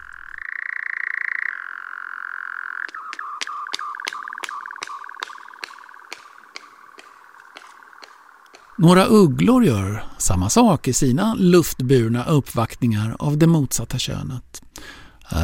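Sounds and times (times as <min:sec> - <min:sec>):
European nightjar churring trill: 0:00.0 - 0:09.1
male European nightjar wing clapping while courting: 0:02.8 - 0:08.8
speech: 0:08.8 - 0:15.4.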